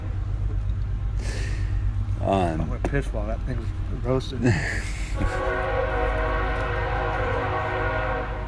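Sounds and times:
heavy rumble of a passing train: 0.0s - 8.4s
speech: 2.2s - 5.7s
train horn blaring in a long steady chord: 5.2s - 8.4s.

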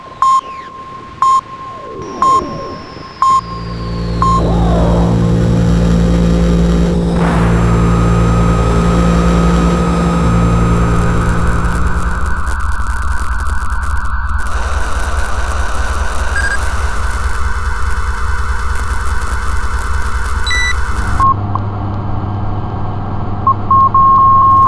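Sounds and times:
high electronic transmission beeps: 0.2s - 21.4s
sweeping electronic tones: 1.8s - 21.3s
buzzing hiss: 3.4s - 21.2s
dense loud drone of layered low hums and static: 3.4s - 24.6s.

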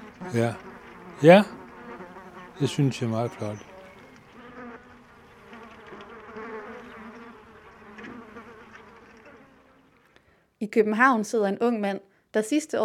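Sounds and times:
many flies buzzing inside a cage: 0.0s - 10.2s
speech: 0.3s - 1.6s, 2.6s - 3.7s, 10.7s - 12.8s.

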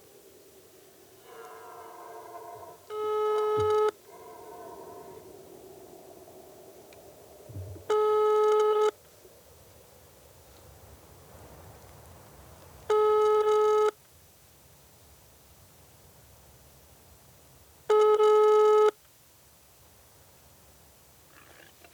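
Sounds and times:
faint hiss: 0.0s - 17.9s, 18.9s - 21.9s
ringback tone of an outgoing telephone call: 2.9s - 4.0s, 7.9s - 8.9s, 12.9s - 13.9s.

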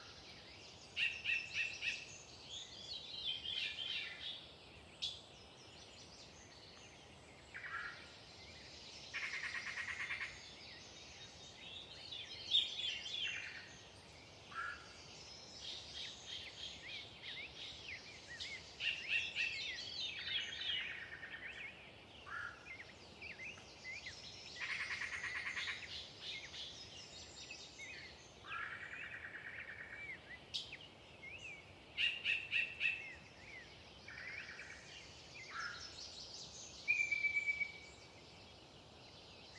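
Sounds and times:
dawn chorus of birds by a lake: 0.0s - 39.5s.

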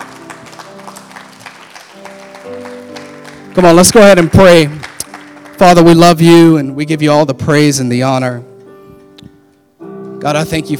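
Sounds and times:
crowd clapping in a large room: 0.0s - 6.4s
speech: 3.6s - 4.8s, 5.6s - 8.5s, 10.2s - 10.7s.

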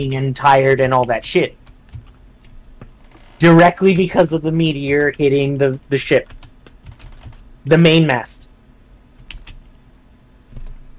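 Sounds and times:
speech: 0.0s - 1.6s, 3.4s - 6.4s, 7.6s - 8.5s
low hum: 0.0s - 10.9s
typing on a keyboard: 6.2s - 7.4s.

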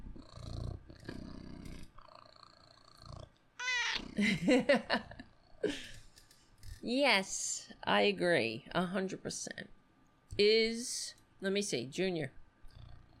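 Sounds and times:
cat purring: 0.0s - 6.9s, 12.6s - 13.1s
cat chirping: 3.6s - 4.0s
speech: 4.2s - 5.9s, 6.8s - 9.8s, 10.4s - 12.4s.

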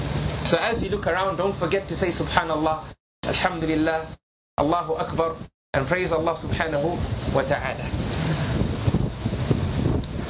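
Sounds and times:
strong wind buffeting the microphone on a yacht: 0.0s - 10.2s
speech: 0.4s - 8.5s.

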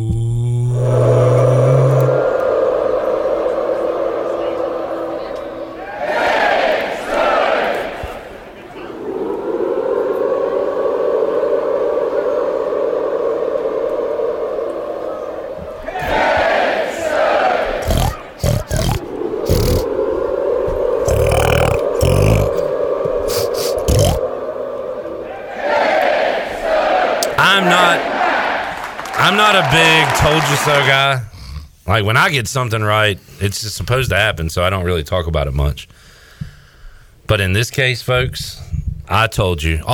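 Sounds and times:
large crowd roaring and yelling: 0.8s - 31.0s
speech: 29.5s - 31.2s, 31.9s - 35.9s, 37.3s - 39.9s.

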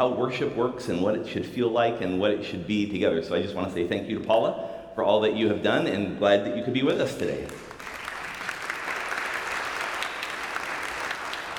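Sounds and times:
speech: 0.0s - 7.6s
polite golf-style applause from audience: 7.5s - 11.5s.

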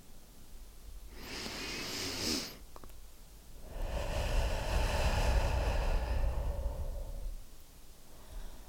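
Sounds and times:
slow deep breathing: 1.1s - 2.6s, 3.6s - 8.6s.

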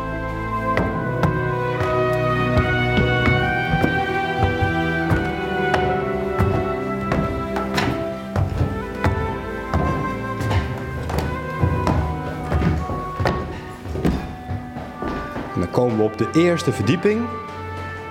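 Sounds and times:
footsteps climbing the grand spiral staircase of a castle: 0.0s - 16.3s, 17.2s - 18.0s
speech: 16.0s - 17.5s.

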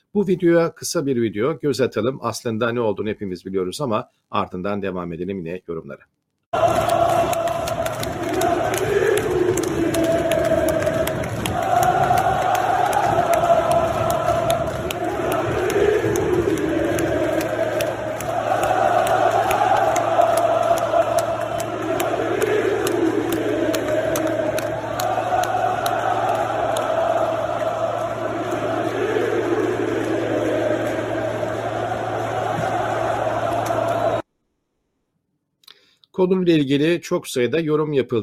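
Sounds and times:
speech: 0.1s - 7.3s, 36.2s - 38.2s
large football stadium crowd chanting in unison: 6.6s - 34.2s.

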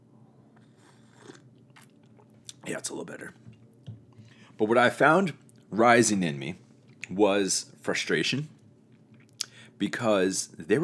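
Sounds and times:
sipping a drink with soft slurping: 0.3s - 4.5s
speech: 2.7s - 3.5s, 4.6s - 8.6s, 9.8s - 10.8s.

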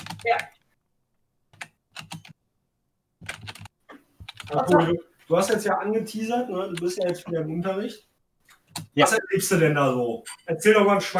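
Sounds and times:
computer keyboard typing: 0.0s - 0.6s, 1.5s - 2.4s, 3.2s - 4.7s, 8.5s - 9.0s
speech: 0.2s - 0.6s, 4.5s - 8.1s, 9.0s - 11.1s.

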